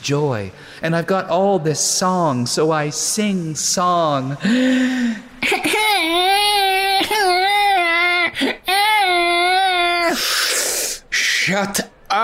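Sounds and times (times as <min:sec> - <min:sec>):
speech: 0:00.0 - 0:06.3, 0:11.5 - 0:12.2
colicky baby crying in long loud wavering wails: 0:05.4 - 0:10.8.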